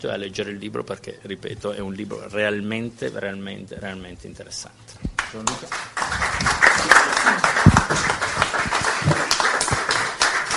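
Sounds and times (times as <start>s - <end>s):
speech: 0.0s - 7.4s
audience applause: 5.6s - 10.5s.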